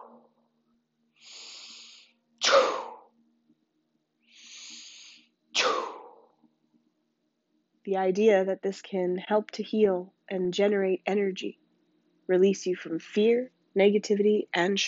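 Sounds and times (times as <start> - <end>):
softer hissing in-breaths: 1.2 - 2.2, 4.3 - 5.3
speech: 7.9 - 11.6, 12.3 - 14.8.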